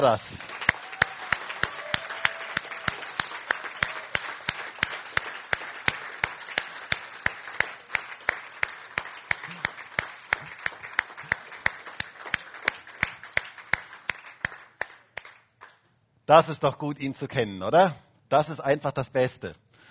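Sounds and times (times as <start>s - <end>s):
speech: 0.0s - 0.4s, 16.3s - 19.6s
church service audience applauding: 0.0s - 15.8s.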